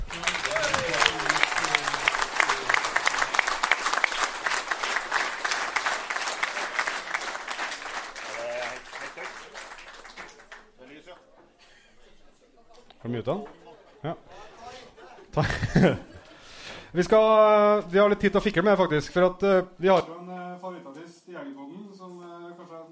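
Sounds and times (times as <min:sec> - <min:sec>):
crowd clapping at a hunting gathering following a toast: 0:00.0 - 0:11.3
laughter: 0:00.1 - 0:03.5, 0:08.3 - 0:09.8, 0:13.4 - 0:16.7
speech: 0:13.2 - 0:14.3, 0:15.4 - 0:16.1, 0:16.9 - 0:20.1.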